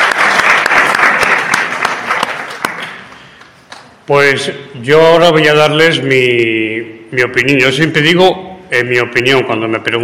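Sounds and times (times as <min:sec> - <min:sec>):
audience applause: 0:00.0 - 0:03.9
speech: 0:04.1 - 0:10.0.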